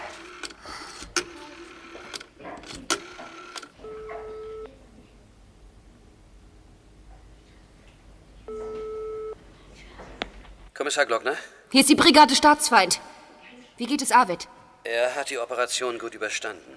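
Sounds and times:
steady electronic telephone ringback tones: 3.4s - 4.7s, 8.5s - 9.4s
speech: 10.8s - 13.1s, 13.8s - 16.7s.

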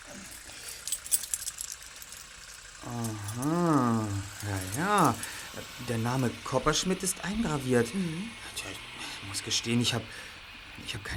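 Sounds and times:
small metal toy key clinking as it is passed between hands: 0.1s - 5.7s
speech: 2.8s - 3.6s, 5.1s - 11.1s.

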